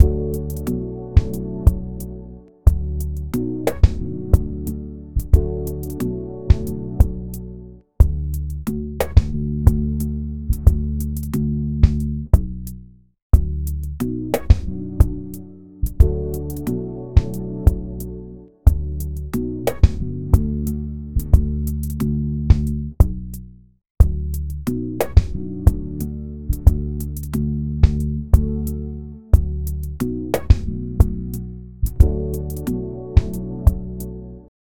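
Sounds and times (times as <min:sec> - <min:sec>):
calm music loop at 90 bpm: 0:00.0 - 0:12.6, 0:13.4 - 0:23.1, 0:24.0 - 0:34.5.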